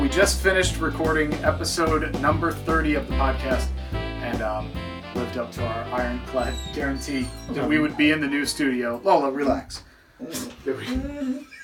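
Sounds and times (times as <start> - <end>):
speech: 0.1 - 11.6
show dog whimpering with head through a cat door: 6.4 - 9.1.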